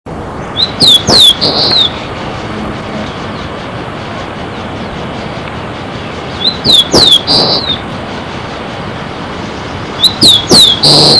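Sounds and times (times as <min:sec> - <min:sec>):
loud background noise: 0:00.1 - 0:11.1
Rufous-collared sparrow song: 0:00.5 - 0:02.0, 0:06.0 - 0:07.8, 0:10.0 - 0:11.1.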